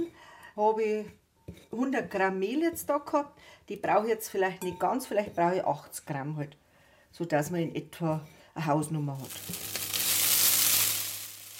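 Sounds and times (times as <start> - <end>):
speech: 0.6 - 9.8
clarified butter melting and sizzling in a hot pan: 9.2 - 11.5.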